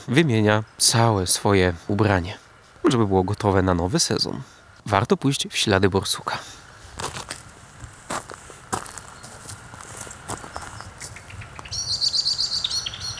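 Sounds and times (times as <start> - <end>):
speech: 0.0 - 7.1
crunching footsteps outdoors: 6.9 - 11.7
blackbird giving rapid sharp alarm chirps: 10.3 - 13.1.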